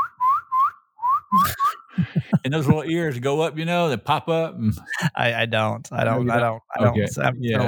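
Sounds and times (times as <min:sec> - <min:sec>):
person whistling a call to summon raccoons: 0:00.0 - 0:02.4
laughter: 0:01.3 - 0:03.3, 0:03.9 - 0:05.4
speech: 0:01.4 - 0:07.6.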